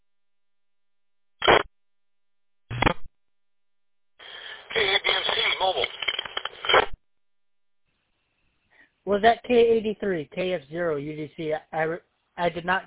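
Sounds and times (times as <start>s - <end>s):
radio static crackling: 1.4s - 1.7s, 2.7s - 3.1s, 4.2s - 7.0s
garbled unintelligible voice in a weak radio transmission: 4.3s - 6.8s
speech: 9.1s - 12.8s.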